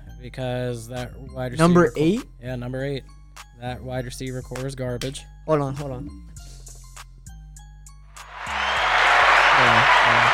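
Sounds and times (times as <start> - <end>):
speech: 0.2 - 6.4
dense steady applause: 8.2 - 10.3.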